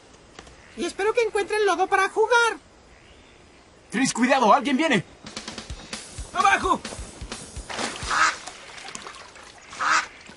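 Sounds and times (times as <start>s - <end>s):
soft outdoor hiss: 0.0s - 10.3s
speech: 0.8s - 2.6s, 3.9s - 5.1s
duck quacking: 8.0s - 8.8s, 9.6s - 10.3s.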